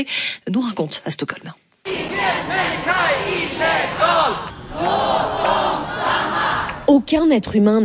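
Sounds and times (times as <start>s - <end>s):
speech: 0.0s - 1.6s, 6.9s - 7.8s
large protest crowd chanting slogans in unison: 1.9s - 6.9s.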